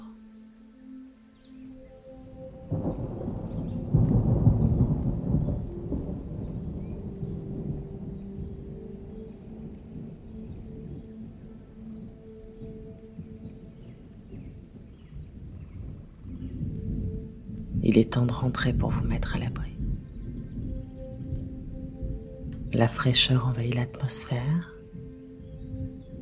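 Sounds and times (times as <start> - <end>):
faint rain: 0.0 - 26.2
distant thunder of an approaching storm rumbling: 2.5 - 26.2
speech: 18.0 - 19.8, 22.7 - 24.7.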